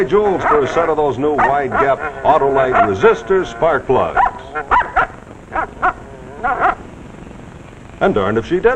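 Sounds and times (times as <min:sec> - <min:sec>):
speech: 0:00.0 - 0:04.7, 0:08.0 - 0:08.7
dog barking and yipping: 0:00.4 - 0:03.0, 0:04.1 - 0:06.8.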